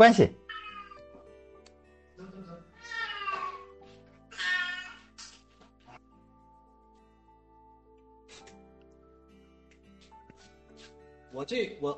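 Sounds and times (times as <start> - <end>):
speech: 0.0 - 0.4, 11.4 - 11.9
cat meowing loudly: 0.5 - 1.0, 2.7 - 3.7, 4.3 - 5.2.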